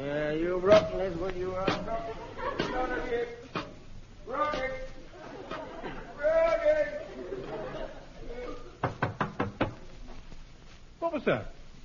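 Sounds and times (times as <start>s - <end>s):
speech: 0.1s - 3.4s, 4.3s - 4.9s, 11.0s - 11.6s
laughter: 1.8s - 3.6s, 4.5s - 8.8s
quick knocks on a door: 8.8s - 9.8s.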